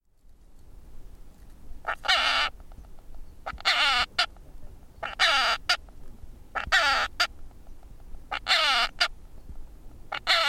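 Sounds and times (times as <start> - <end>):
storm petrel calling: 1.8 - 9.5, 10.1 - 10.4.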